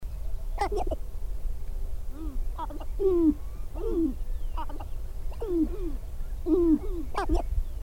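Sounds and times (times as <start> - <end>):
Sharp-tailed Grouse gabbling: 0.6 - 1.0, 2.1 - 7.5.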